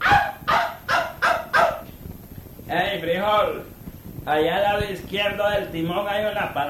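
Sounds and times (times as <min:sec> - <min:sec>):
dog barking: 0:00.0 - 0:01.9
speech: 0:02.7 - 0:06.6.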